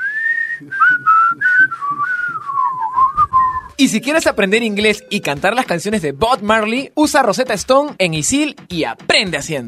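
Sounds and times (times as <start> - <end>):
whistled melody of a cheerful song: 0.0 - 4.1
speech: 0.6 - 1.0, 3.8 - 9.6
soft steady rhythmic backing: 0.6 - 9.6.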